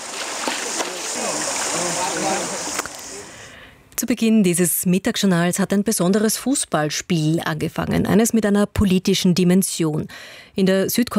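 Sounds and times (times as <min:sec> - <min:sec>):
elephants from an elephant park splashing while bathing in a river: 0:00.0 - 0:03.4
speech: 0:04.0 - 0:11.1.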